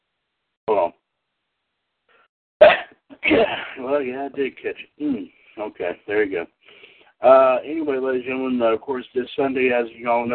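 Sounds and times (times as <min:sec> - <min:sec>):
person sneezing: 0:02.6 - 0:03.8
speech: 0:03.2 - 0:10.3.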